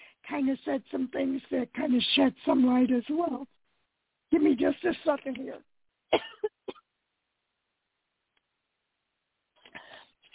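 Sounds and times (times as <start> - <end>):
speech: 0.3 - 3.6, 4.3 - 6.4
person coughing from a tickle in the throat: 6.1 - 6.8.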